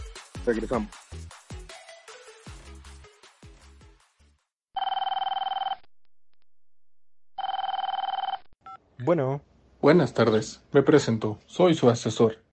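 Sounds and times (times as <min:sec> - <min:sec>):
speech: 0:00.5 - 0:01.3, 0:09.0 - 0:12.4
telephone ringing in electronic bursts: 0:04.8 - 0:05.9, 0:07.4 - 0:08.6.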